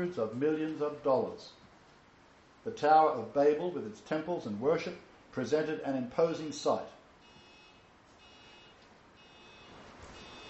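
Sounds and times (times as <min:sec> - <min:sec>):
speech: 0:00.0 - 0:01.6, 0:02.6 - 0:07.0
noise: 0:00.0 - 0:10.4
car alarm blaring outside: 0:07.2 - 0:10.4.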